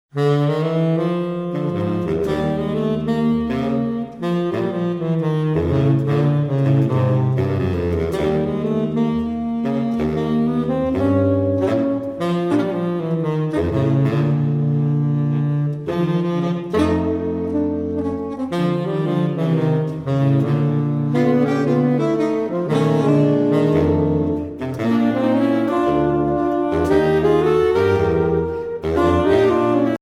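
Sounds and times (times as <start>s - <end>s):
saxophone quartet: 0.1s - 29.9s.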